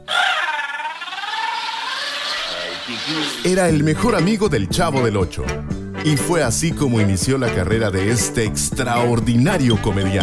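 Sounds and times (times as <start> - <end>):
comedic character's loud exaggerated crying wail in a high wavering voice: 0.0 - 3.5
speech: 2.9 - 10.2.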